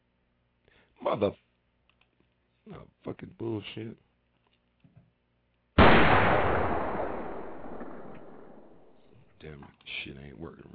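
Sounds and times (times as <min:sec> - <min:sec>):
speech: 0:01.0 - 0:01.5, 0:02.7 - 0:04.1, 0:09.4 - 0:10.7
gunshot: 0:05.8 - 0:09.1.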